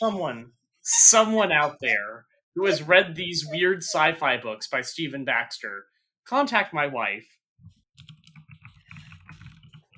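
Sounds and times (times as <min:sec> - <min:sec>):
speech: 0:00.0 - 0:07.8
typing on a computer keyboard: 0:08.0 - 0:09.9.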